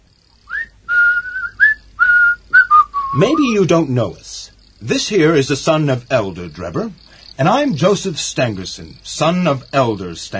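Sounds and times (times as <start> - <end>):
person whistling a short tune: 0.5 - 3.3
speech: 3.1 - 10.3.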